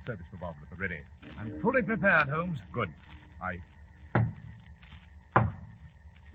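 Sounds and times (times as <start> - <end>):
speech: 0.1 - 3.8
firm hollow knocks on a wooden door: 4.2 - 4.4, 5.4 - 5.7.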